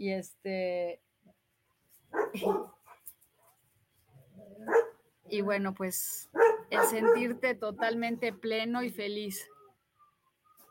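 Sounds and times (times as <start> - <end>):
speech: 0.0 - 1.1, 2.1 - 2.8, 4.5 - 9.5
dogs barking: 2.1 - 3.5, 4.6 - 5.0, 6.3 - 8.4.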